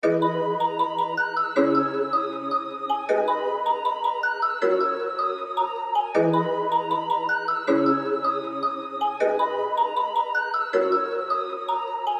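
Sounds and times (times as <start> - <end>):
plucked keys melody in G minor at 157 BPM: 0.0 - 12.1.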